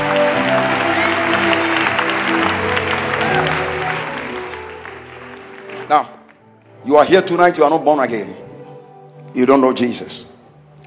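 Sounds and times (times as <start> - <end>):
crowd clapping in worship: 0.0 - 6.8
music: 0.0 - 10.8
speech: 6.9 - 8.5, 9.3 - 10.3.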